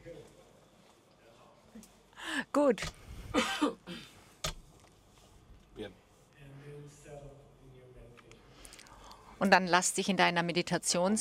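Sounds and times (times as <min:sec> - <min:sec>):
speech: 0:02.6 - 0:04.0, 0:09.4 - 0:11.1
coughing: 0:03.3 - 0:04.2.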